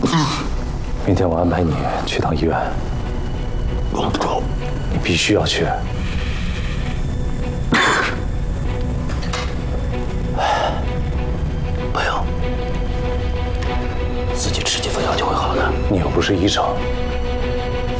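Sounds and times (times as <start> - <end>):
throat-clearing rasp: 0.0 - 0.5, 7.7 - 8.2
steady low hum: 0.4 - 17.9
harsh raspy coughs: 7.7 - 8.3.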